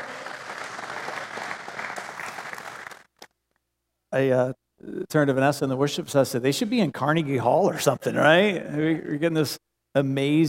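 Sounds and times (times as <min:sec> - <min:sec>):
audience clapping: 0:00.0 - 0:03.3
speech: 0:04.2 - 0:10.4.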